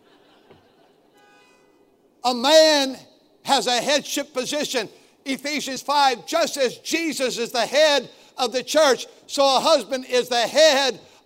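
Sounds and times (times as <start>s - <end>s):
car horn honking: 1.1s - 1.9s
speech: 2.2s - 11.1s.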